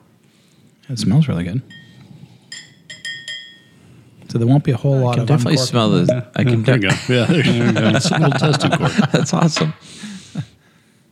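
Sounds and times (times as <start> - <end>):
speech: 0.9 - 1.8, 4.4 - 10.2
sealed glass sample vial clinking: 1.7 - 3.8
laughter: 6.7 - 10.5.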